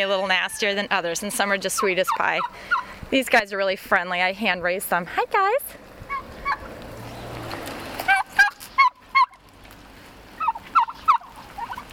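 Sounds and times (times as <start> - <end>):
hand-raised turkeys gobbling: 0.0 - 2.9, 6.1 - 6.8, 8.0 - 9.5, 10.2 - 11.9
speech: 0.0 - 5.8
low outdoor rumble: 0.0 - 11.9.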